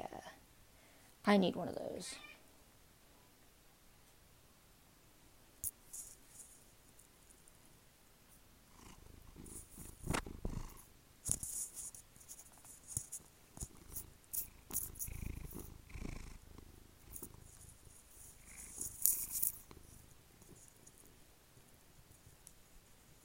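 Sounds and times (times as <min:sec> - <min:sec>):
speech: 0:01.2 - 0:02.3
rustling: 0:05.6 - 0:07.6, 0:08.8 - 0:23.2
cat purring: 0:08.6 - 0:21.2.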